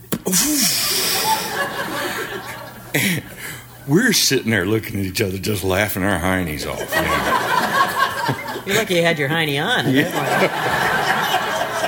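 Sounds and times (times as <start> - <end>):
breathy hiss from the mouth: 0.0 - 4.0
voice imitating a latex membrane bursting: 0.1 - 0.5
speech: 0.3 - 0.7, 2.4 - 7.6, 8.2 - 10.9
laughter: 0.4 - 4.1, 6.6 - 11.8.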